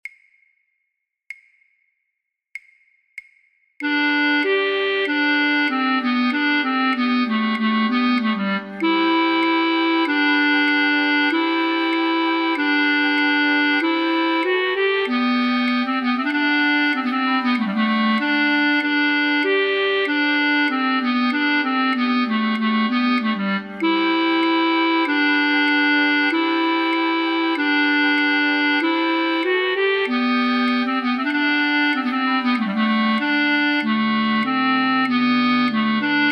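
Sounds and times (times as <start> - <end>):
flute choir with alto flute playing a practice track: 3.8 - 36.3.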